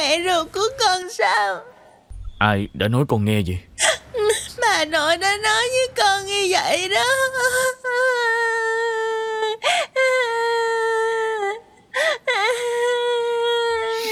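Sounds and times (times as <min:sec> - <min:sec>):
speech: 0:00.1 - 0:01.8, 0:02.4 - 0:04.0, 0:04.6 - 0:08.4
child crying in long high wails: 0:06.9 - 0:14.1.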